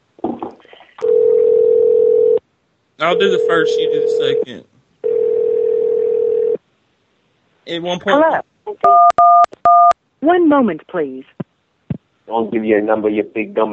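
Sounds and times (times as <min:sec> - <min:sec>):
telephone dial tone: 0:01.0 - 0:02.4, 0:05.1 - 0:06.6
speech: 0:03.0 - 0:04.7, 0:07.7 - 0:09.6, 0:10.3 - 0:11.4, 0:12.3 - 0:13.7.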